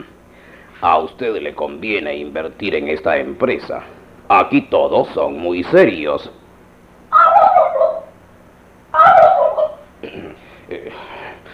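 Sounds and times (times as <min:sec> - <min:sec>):
speech: 0:00.8 - 0:06.4
turkey gobbling: 0:07.1 - 0:08.2, 0:08.9 - 0:09.9.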